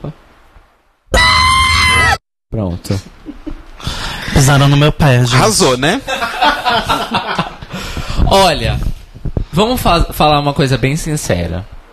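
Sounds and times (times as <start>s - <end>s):
speech: 0.0s - 0.2s, 2.5s - 3.4s, 4.4s - 7.5s, 8.3s - 8.9s, 9.6s - 11.8s
loud sustained harsh strained scream: 1.1s - 2.2s
laughter: 6.0s - 7.9s.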